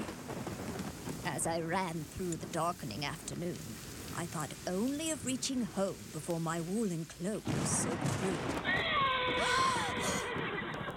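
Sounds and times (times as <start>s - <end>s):
dense constant noise: 0.0s - 10.9s
speech: 1.3s - 10.4s
black carriage horse neighing in a muddy dooryard: 8.7s - 10.9s.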